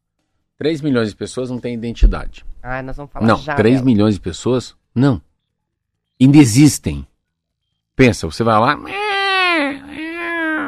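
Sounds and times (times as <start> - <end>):
speech: 0.6 - 5.3, 6.2 - 7.1, 8.0 - 9.0
voice mimicking a newborn's wailing cry: 8.8 - 10.6.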